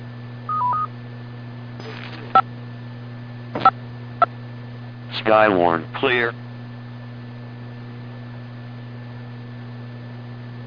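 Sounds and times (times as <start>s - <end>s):
radio repeater control beeps in Central Carolina: 3.6s - 3.8s
speech: 5.2s - 6.4s.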